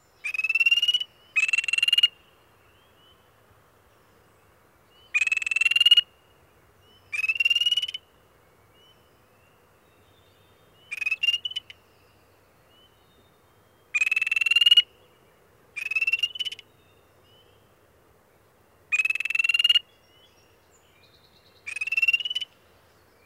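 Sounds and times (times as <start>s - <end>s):
spring peeper frog aggressive call upslurred trill: 0.2s - 2.2s, 5.1s - 6.1s, 7.1s - 8.0s, 10.9s - 11.8s, 13.9s - 14.9s, 15.8s - 16.6s, 18.9s - 19.8s, 21.7s - 22.5s.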